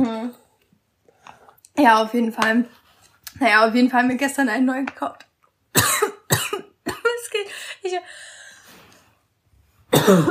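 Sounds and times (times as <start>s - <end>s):
speech: 1.8s - 2.8s, 3.4s - 5.3s, 7.9s - 8.2s, 10.1s - 10.2s
single sharp dry cough: 5.7s - 7.2s, 9.9s - 10.2s.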